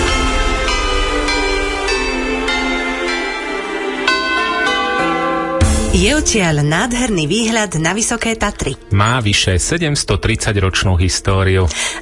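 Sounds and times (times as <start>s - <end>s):
church bells ringing over the countryside of a village: 0.0s - 8.7s
speech: 6.0s - 12.0s.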